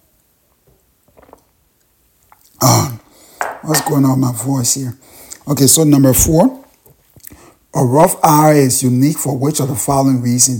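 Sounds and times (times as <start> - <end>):
person sipping tea: 0.6 - 1.6, 2.2 - 3.7, 5.0 - 5.5
speech: 3.7 - 6.6, 7.7 - 10.5.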